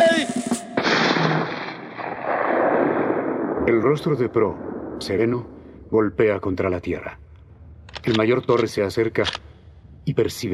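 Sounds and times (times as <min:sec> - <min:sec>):
firing squad rifle volley at an execution: 0:00.5 - 0:03.8
speech: 0:03.7 - 0:07.2, 0:08.0 - 0:09.4, 0:10.1 - 0:10.5.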